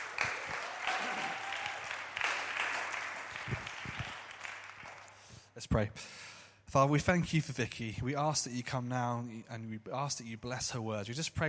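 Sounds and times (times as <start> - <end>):
crowd applauding: 0.0 - 5.3
speech: 5.6 - 11.4.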